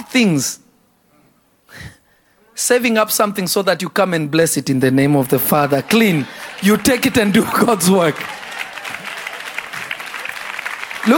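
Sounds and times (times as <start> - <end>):
speech: 0.1 - 0.6, 2.6 - 8.4
audience clapping: 5.4 - 11.1.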